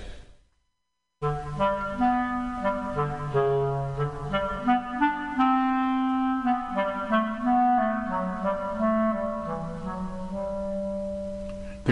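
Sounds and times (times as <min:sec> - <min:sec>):
clarinet playing a slow creeping melody in its low register: 0:01.2 - 0:11.9.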